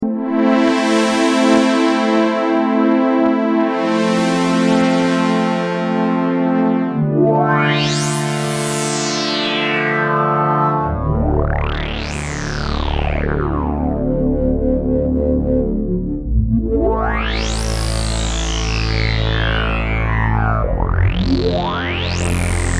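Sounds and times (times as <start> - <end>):
Prophet 600 synthesizer: 0.0 - 22.7.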